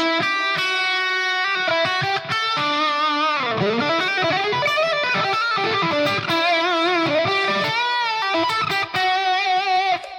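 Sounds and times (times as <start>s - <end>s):
distorted electric guitar improvising over shifting chords: 0.0s - 10.1s.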